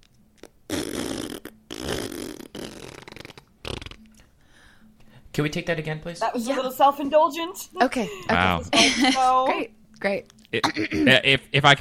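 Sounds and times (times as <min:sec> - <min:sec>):
person blowing wet raspberries imitating farts: 0:00.4 - 0:04.2
speech: 0:05.4 - 0:11.7.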